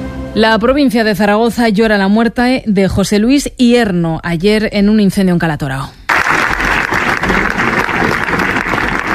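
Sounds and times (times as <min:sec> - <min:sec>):
speech: 0:00.4 - 0:06.0
sustained applause from a large crowd: 0:06.1 - 0:09.1.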